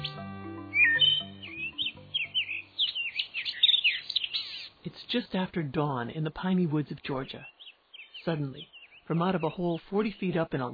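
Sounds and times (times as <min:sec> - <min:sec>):
low sustained musical tones: 0:00.0 - 0:03.6
red-cockaded woodpeckers calling in squeaky chirps: 0:00.0 - 0:04.9, 0:07.4 - 0:10.4
speech: 0:05.1 - 0:07.6, 0:08.2 - 0:10.7.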